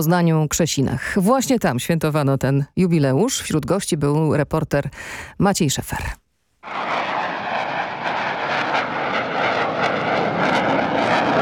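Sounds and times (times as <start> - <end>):
speech: 0.0 - 7.0
F-16 fighter jet engine roar: 6.6 - 11.4.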